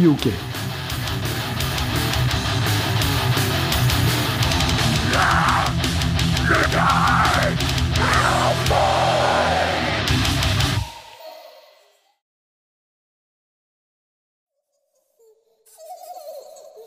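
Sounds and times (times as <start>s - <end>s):
speech: 0.0s - 0.7s
driving distorted guitars: 0.0s - 11.0s
loud dense rock song: 0.3s - 10.9s
steady pounding drums: 0.6s - 9.0s.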